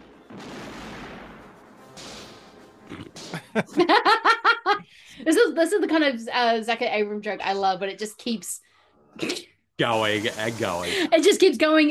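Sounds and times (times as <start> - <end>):
heavy cannon firing: 0.0 - 3.4
rhythmic hearty laughter: 2.9 - 4.9
speech: 3.6 - 4.4, 5.3 - 11.8.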